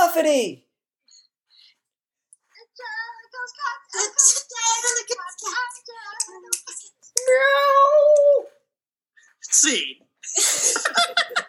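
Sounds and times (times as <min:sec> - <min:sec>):
speech: 0:00.2 - 0:00.6, 0:03.6 - 0:08.6, 0:09.4 - 0:11.4
person imitating a cat meow: 0:07.2 - 0:08.6
laughter: 0:10.2 - 0:11.4.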